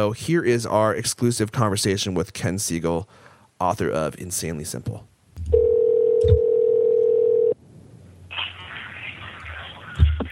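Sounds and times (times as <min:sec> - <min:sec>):
speech: 0:00.0 - 0:05.6
telephone dial tone: 0:05.5 - 0:07.6.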